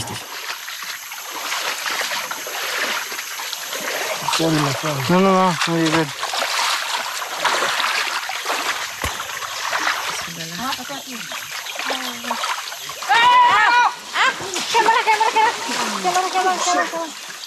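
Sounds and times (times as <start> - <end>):
river water churning and splashing: 0.0 - 17.4
speech: 4.4 - 6.2, 15.0 - 17.2
excited voices shouting: 13.0 - 17.2.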